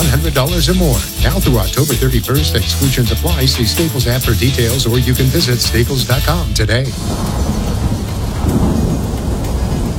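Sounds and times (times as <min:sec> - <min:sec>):
speech: 0:00.3 - 0:07.6
heavy rain: 0:05.2 - 0:09.9
deep rolling thunder rumble: 0:06.6 - 0:09.9.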